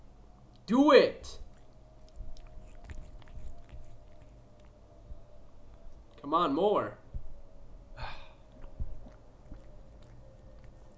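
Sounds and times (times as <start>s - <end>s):
faint steady hum: 0.0s - 10.9s
speech: 0.7s - 1.4s, 6.2s - 7.0s
cat grooming itself with wet licking: 1.3s - 6.2s, 8.3s - 10.9s.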